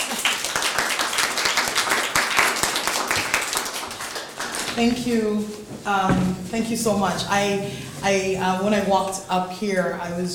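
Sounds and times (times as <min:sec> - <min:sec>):
audience applauding: 0:00.0 - 0:04.8
speech: 0:04.8 - 0:10.3.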